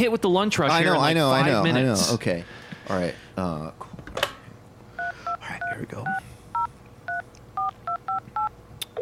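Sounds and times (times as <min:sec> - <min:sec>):
speech: 0:00.0 - 0:04.0, 0:05.8 - 0:06.3
low hum: 0:00.0 - 0:09.0
touch-tone beeps of a phone number being dialed: 0:06.6 - 0:09.0.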